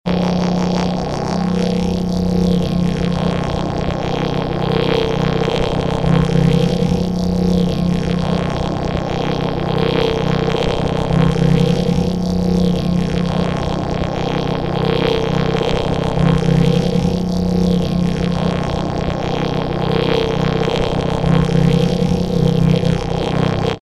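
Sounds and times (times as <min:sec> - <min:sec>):
transformed didgeridoo: 0:00.1 - 0:23.8.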